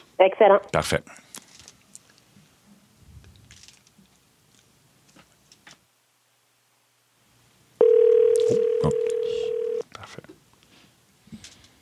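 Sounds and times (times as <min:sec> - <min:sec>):
speech: 0:00.2 - 0:01.2
electronic telephone ring tone: 0:07.8 - 0:09.8.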